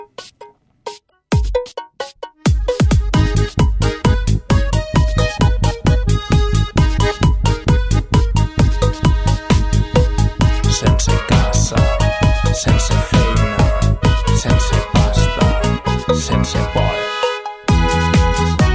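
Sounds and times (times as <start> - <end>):
electronic techno track with traditional Mediterranean sounds: 1.3 - 18.7.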